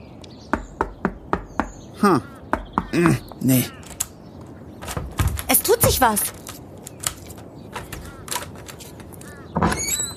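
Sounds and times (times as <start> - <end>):
knocking on the door of an old villa: 0.5 - 1.8, 2.5 - 3.2
speech: 2.0 - 3.8, 5.9 - 6.4.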